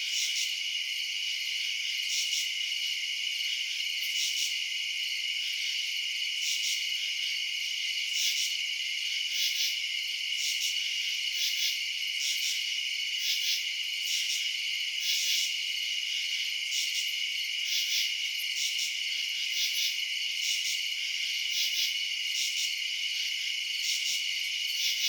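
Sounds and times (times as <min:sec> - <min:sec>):
crickets chirping at night in residential suburbs: 0:00.0 - 0:25.0.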